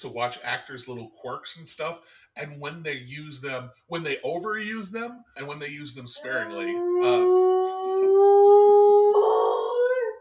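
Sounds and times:
speech: 0.0s - 7.4s
dog howling: 6.2s - 10.1s.

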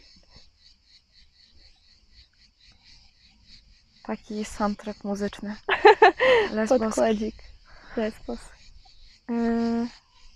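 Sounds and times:
dense chorus of cicadas buzzing: 0.0s - 10.3s
speech: 4.0s - 8.6s, 9.3s - 10.0s
laughter: 5.7s - 7.2s.

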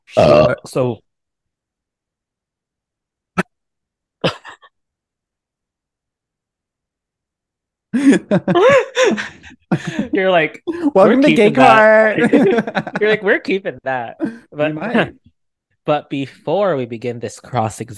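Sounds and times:
burp: 0.1s - 0.7s
speech: 0.2s - 1.0s, 8.0s - 15.3s, 15.9s - 17.9s
laughter: 8.0s - 15.1s.

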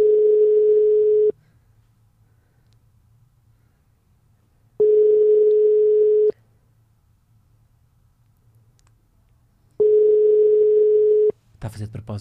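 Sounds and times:
telephone ringback tone: 0.0s - 1.4s, 4.8s - 6.4s, 9.8s - 11.4s
speech: 11.6s - 12.1s.

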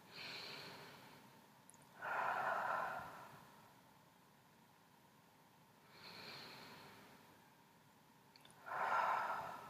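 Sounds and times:
slow moderately deep human breathing: 0.0s - 1.4s, 2.0s - 3.8s, 5.8s - 7.4s, 8.5s - 9.6s.

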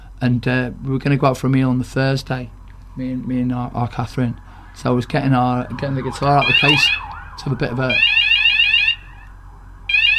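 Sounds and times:
speech: 0.2s - 8.2s
fire alarm going off: 5.6s - 9.2s, 9.9s - 10.1s.

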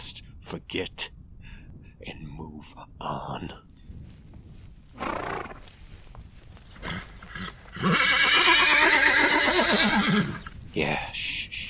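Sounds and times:
speech: 0.0s - 1.2s, 2.0s - 3.7s, 7.8s - 8.7s, 9.5s - 11.6s
quiet shuffling: 3.8s - 7.8s
horse whinnying: 6.8s - 10.5s.

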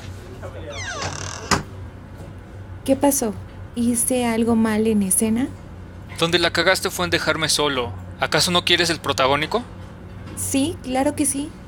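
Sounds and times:
speech: 0.4s - 1.6s, 2.9s - 9.8s, 10.4s - 11.6s
office door hinges or runners squealing: 0.7s - 1.7s.

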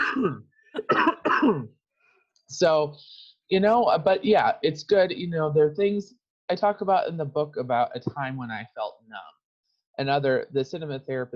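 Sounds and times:
person coughing harshly: 0.0s - 1.7s
speech: 0.2s - 1.8s, 2.5s - 9.3s, 10.0s - 11.3s.

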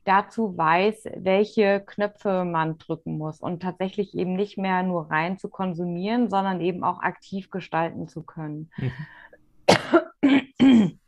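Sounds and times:
speech: 0.1s - 9.2s
person coughing: 8.8s - 9.1s, 9.7s - 11.0s.

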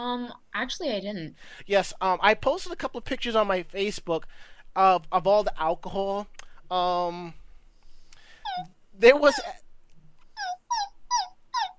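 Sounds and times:
speech: 0.0s - 7.4s, 8.5s - 9.6s
dog whimpering: 8.5s - 9.5s, 10.4s - 11.7s.

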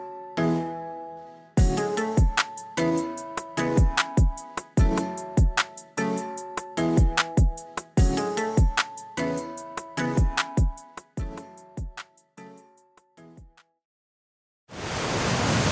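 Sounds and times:
short musical passage with plucked percussive notes: 1.6s - 12.2s
loud steady roar of rushing waterfall water: 14.8s - 15.6s.

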